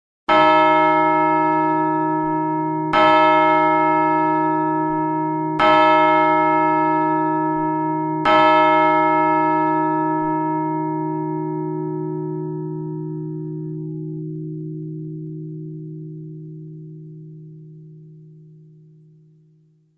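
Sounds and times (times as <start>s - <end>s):
bell tolling four o'clock: 0.3s - 14.2s.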